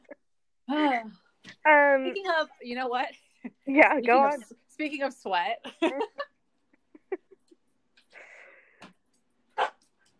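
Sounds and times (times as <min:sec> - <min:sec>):
speech: 0:00.7 - 0:06.1
dog barking: 0:09.6 - 0:09.8.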